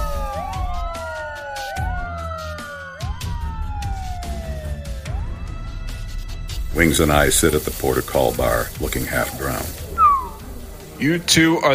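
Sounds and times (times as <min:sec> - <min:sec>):
police sirens wailing: 0:00.0 - 0:06.1, 0:06.7 - 0:11.4
low rumble of traffic: 0:06.6 - 0:11.3
speech: 0:06.8 - 0:09.8, 0:11.0 - 0:11.7.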